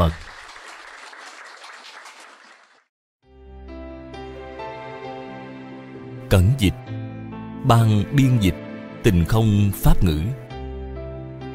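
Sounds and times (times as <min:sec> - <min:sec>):
audience applause: 0:00.0 - 0:02.9
sustained tonal instrumental music: 0:03.2 - 0:11.5
speech: 0:06.3 - 0:06.8, 0:07.6 - 0:10.4.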